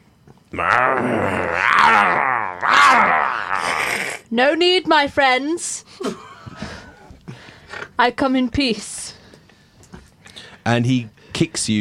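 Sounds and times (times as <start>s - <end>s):
person imitating territorial animals growling: 0.5s - 4.3s
speech: 0.5s - 6.2s, 8.0s - 9.2s, 10.6s - 11.8s.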